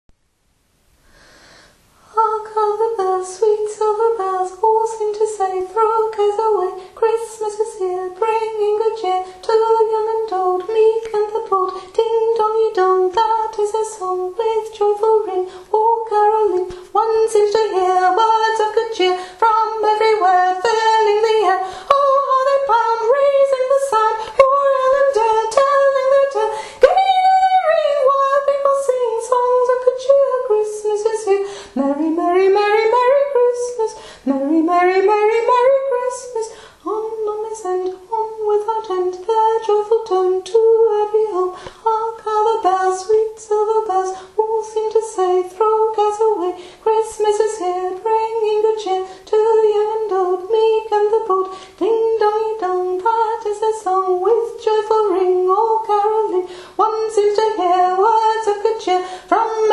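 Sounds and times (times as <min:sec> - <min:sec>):
soprano voice singing: 0:02.0 - 0:59.7.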